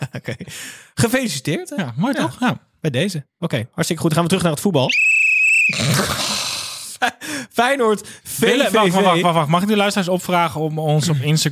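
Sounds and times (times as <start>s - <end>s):
speech: 0.2s - 11.5s
person whistling a high-pitched note: 4.9s - 6.4s
laughter: 8.5s - 9.4s.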